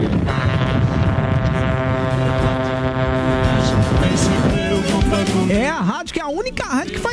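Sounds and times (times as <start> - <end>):
several vehicle horns honking: 0.0 - 5.5
speech: 5.7 - 7.1.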